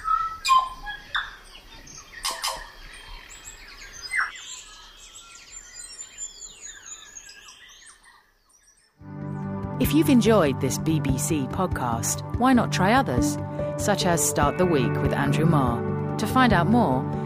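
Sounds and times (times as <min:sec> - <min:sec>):
New Zealand birdsong chorus: 0:00.0 - 0:09.0
speech: 0:09.9 - 0:17.2.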